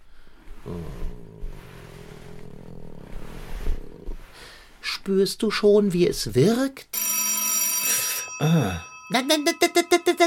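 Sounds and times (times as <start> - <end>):
speech: 0.6 - 1.2, 4.8 - 7.0, 8.4 - 10.2
contented cat purring: 0.6 - 4.4
telephone ringing with an electronic tone: 7.0 - 10.2.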